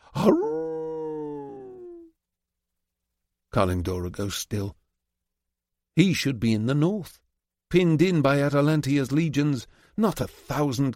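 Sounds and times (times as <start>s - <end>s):
wolf howling: 0.1s - 2.1s
speech: 0.2s - 0.5s, 3.6s - 4.8s, 6.0s - 10.9s.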